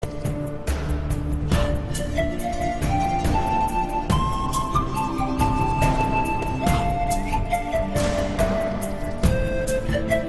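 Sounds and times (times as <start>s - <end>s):
Oppo flute playing: 0.0s - 10.2s.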